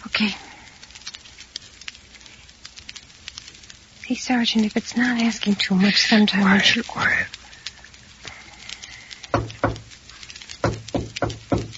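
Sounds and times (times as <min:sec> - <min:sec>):
speech: 0:00.2 - 0:00.5, 0:04.1 - 0:07.4
patterned knocking on a door: 0:09.4 - 0:09.8, 0:10.6 - 0:11.7.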